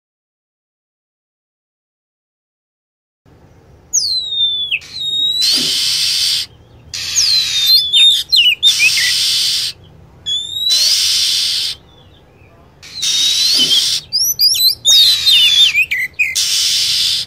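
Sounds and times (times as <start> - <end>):
lovebird chirps: 3.4 - 17.2
loud hissing: 4.2 - 11.9, 12.7 - 17.2.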